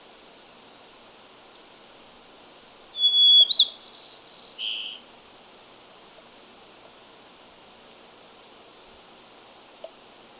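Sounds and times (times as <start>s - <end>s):
white-crowned sparrow of subspecies gambelii singing: 3.0s - 5.1s.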